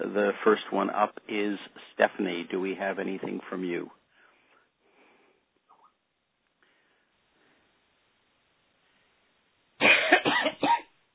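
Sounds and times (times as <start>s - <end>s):
speech: 0.1s - 4.0s
person coughing on a meeting call: 9.8s - 10.9s.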